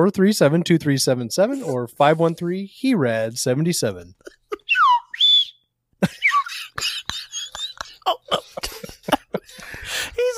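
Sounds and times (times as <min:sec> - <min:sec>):
speech: 0:00.0 - 0:04.4
laughter: 0:04.2 - 0:05.1, 0:06.0 - 0:10.3
slide whistle swooping: 0:04.7 - 0:05.7.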